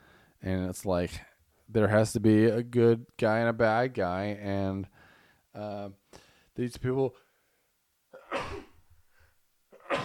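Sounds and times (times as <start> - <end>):
brief intake of breath: 0.0 - 0.4, 4.9 - 5.5, 6.1 - 6.5
speech: 0.4 - 7.2
man sneezing loud and sharp: 8.2 - 8.8, 9.7 - 10.0.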